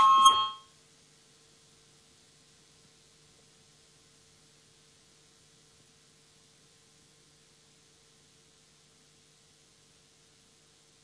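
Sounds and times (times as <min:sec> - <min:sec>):
parliamentary voting bell ringing: 0:00.0 - 0:00.6.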